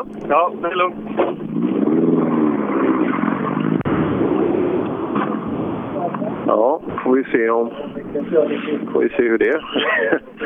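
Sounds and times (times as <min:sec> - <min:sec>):
speech: 0:00.0 - 0:01.8, 0:06.5 - 0:10.4
240 rally car engine revving at finish line: 0:00.0 - 0:07.0
laughter: 0:09.4 - 0:10.4.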